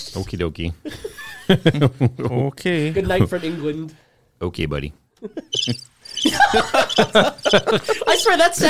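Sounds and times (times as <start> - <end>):
speech: 0.0 - 8.6
laughter: 0.8 - 2.5, 5.2 - 8.6
cricket chirping: 5.5 - 7.8.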